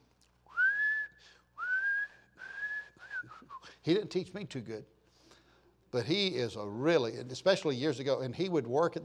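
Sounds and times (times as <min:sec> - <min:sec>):
man whistling a tune: 0:00.5 - 0:03.8
speech: 0:03.8 - 0:05.0, 0:05.9 - 0:09.0.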